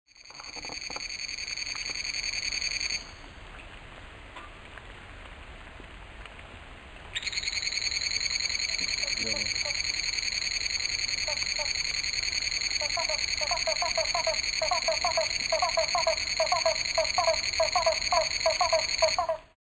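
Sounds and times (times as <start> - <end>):
Chiasmocleis albopunctata frog calling: 0.2 - 3.2, 7.2 - 19.5.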